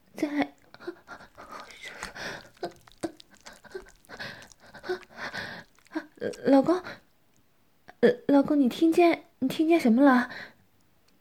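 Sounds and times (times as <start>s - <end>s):
heavy uneven panting breath: 0.7s - 6.1s
speech: 6.2s - 7.0s, 8.0s - 10.5s.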